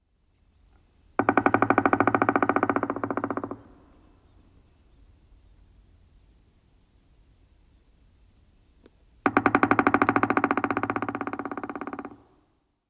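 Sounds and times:
pileated woodpecker calls: 0:01.2 - 0:05.6, 0:09.3 - 0:12.4.

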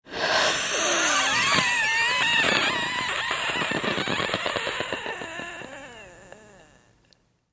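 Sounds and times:
person wheezing: 0:00.1 - 0:03.7, 0:04.8 - 0:07.0.

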